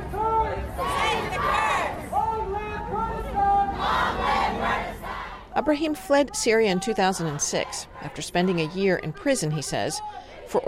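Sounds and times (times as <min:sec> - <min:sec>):
dense wash of crowd noise: 0:00.0 - 0:10.6
large crowd chanting in unison at a peace rally: 0:00.4 - 0:02.1, 0:03.6 - 0:05.5, 0:06.6 - 0:10.6
speech: 0:05.6 - 0:10.6.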